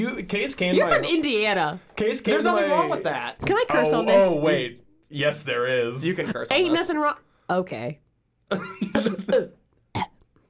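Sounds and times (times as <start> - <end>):
speech: 0.0 - 9.6
small quick coughs: 8.5 - 10.4.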